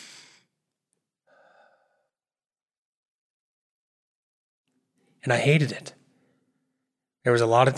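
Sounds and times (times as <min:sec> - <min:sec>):
airy breath in through the nose: 0:00.0 - 0:00.4
steady breath out of the mouth through pursed lips: 0:00.0 - 0:00.4, 0:01.3 - 0:02.1
speech: 0:05.2 - 0:06.0, 0:07.2 - 0:07.7.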